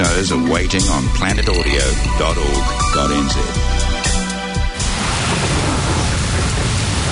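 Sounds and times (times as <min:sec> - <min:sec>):
speech: 0:00.0 - 0:03.9
deep low rumble: 0:00.7 - 0:07.1
brief tonal sound: 0:01.0 - 0:04.2
heavy rain: 0:04.8 - 0:07.1.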